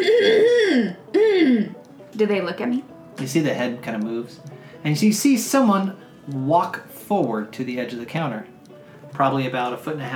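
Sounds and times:
throat clearing at a ticket booth: 0.0s - 1.8s
speech: 2.2s - 8.5s, 9.1s - 10.1s.

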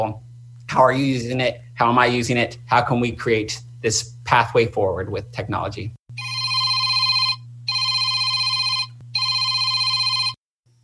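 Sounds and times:
speech: 0.0s - 6.0s
constant low electrical hum: 0.0s - 10.8s
old-style telephone ringing: 6.2s - 10.4s.

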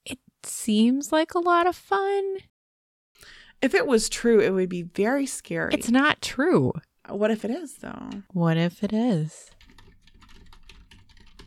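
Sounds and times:
speech: 0.1s - 2.5s, 3.2s - 9.6s
fast typing on a computer keyboard: 9.4s - 11.4s.

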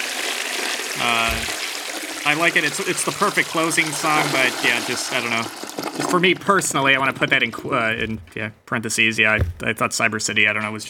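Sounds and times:
toilet flushing: 0.0s - 7.5s
low gurgling thump: 1.0s - 1.6s, 9.3s - 9.7s
speech: 1.0s - 1.6s, 2.2s - 10.8s.

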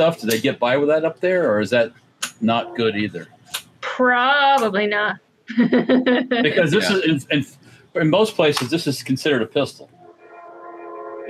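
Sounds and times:
speech: 0.0s - 3.3s, 3.9s - 9.9s
passing train horn: 10.0s - 11.2s.

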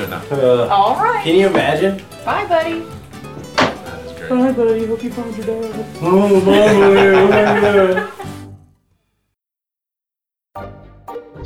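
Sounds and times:
speech: 0.0s - 3.0s, 4.3s - 8.3s
door shutting: 3.3s - 4.0s
laughter: 6.0s - 8.4s.

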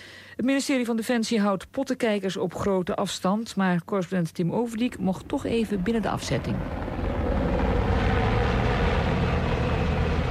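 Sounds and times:
speech: 0.4s - 6.9s
military helicopter flying overhead: 4.8s - 10.3s.

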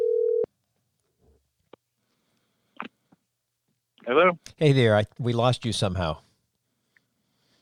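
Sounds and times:
loud steady telephone ringback tone on outgoing call: 0.0s - 0.5s
speech: 4.1s - 6.2s.

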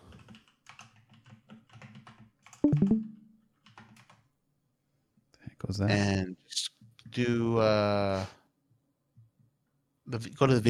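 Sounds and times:
computer keyboard typing a search query: 0.1s - 4.2s
speech: 2.8s - 3.1s, 5.7s - 6.4s, 7.2s - 8.4s, 10.1s - 10.6s.

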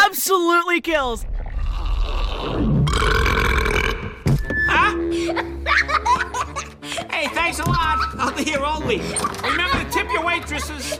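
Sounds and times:
speech: 0.3s - 1.4s, 2.3s - 3.2s, 4.7s - 10.9s
long loud rumbling burp: 1.4s - 4.3s
laughter: 4.8s - 10.9s.

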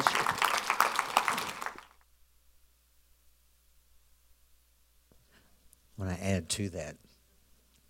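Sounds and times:
audience applauding with hand claps: 0.0s - 2.0s
speech: 6.1s - 7.1s.

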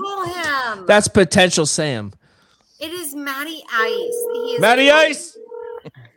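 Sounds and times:
speech: 0.2s - 2.2s, 2.8s - 5.3s
phone keypad beeps of an outgoing call: 3.8s - 5.8s.

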